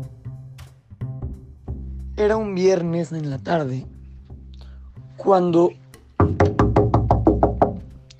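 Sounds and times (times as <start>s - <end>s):
speech: 2.2s - 3.9s, 5.2s - 6.5s
solid knocks on a wooden door: 6.2s - 7.9s.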